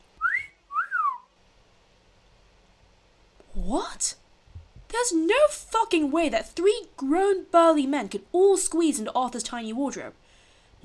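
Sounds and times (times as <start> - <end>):
loud wolf whistle: 0.2 - 1.3
speech: 3.6 - 4.2, 4.9 - 10.2.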